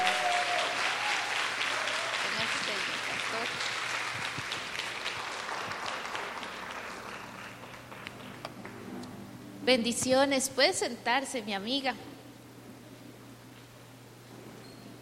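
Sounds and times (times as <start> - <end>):
audience applause: 0.0 - 8.8
speech: 9.7 - 12.1.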